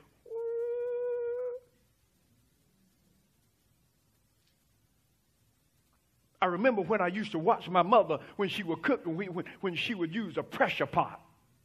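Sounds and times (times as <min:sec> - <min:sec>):
voice imitating a whistling tea kettle: 0:00.2 - 0:01.8
speech: 0:06.4 - 0:11.2.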